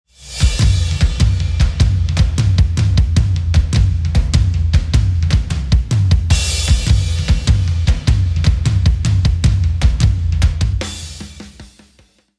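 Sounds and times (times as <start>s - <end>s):
drum bus: 0.0s - 12.3s.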